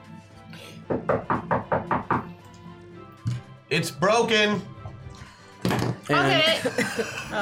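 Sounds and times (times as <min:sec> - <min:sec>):
speech: 0:00.9 - 0:01.5, 0:03.7 - 0:04.7, 0:06.1 - 0:07.4
firm knocks on a wooden door: 0:00.9 - 0:02.4
laughter: 0:06.4 - 0:07.4.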